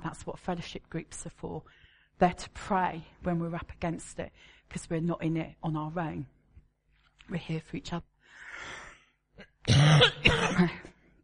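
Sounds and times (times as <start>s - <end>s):
speech: 0.1s - 6.4s, 7.3s - 8.8s, 9.6s - 10.9s
harsh throaty cough: 9.4s - 11.0s.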